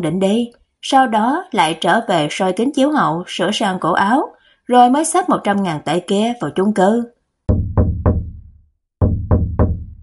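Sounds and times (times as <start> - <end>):
speech: 0.0 - 7.9
knocking on an apartment door: 7.5 - 10.0.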